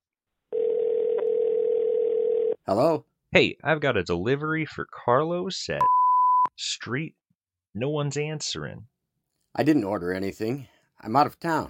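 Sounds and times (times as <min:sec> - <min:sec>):
steady telephone dial tone as a prank phone call is placed: 0:00.5 - 0:02.6
speech: 0:02.7 - 0:08.9, 0:09.6 - 0:11.6.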